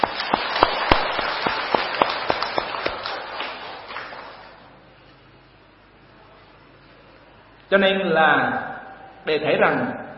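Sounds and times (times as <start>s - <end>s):
audience applause: 0.0s - 4.6s
speech: 7.7s - 10.0s.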